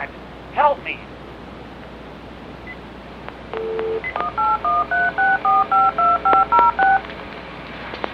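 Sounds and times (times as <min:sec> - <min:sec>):
speech: 0:00.7 - 0:01.2
steady phone tone: 0:03.5 - 0:07.0.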